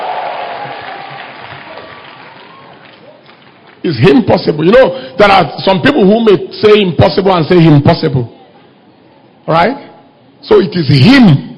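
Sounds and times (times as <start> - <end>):
crowd applauding: 0.0 - 4.0
speech: 3.8 - 8.4, 9.5 - 9.8, 10.4 - 11.5.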